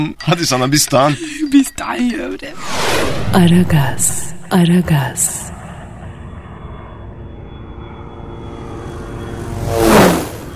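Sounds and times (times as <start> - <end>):
speech: 0.0 - 5.5
laughter: 0.4 - 1.8
airplane engine roaring past on a flight to Istanbul: 2.5 - 10.5.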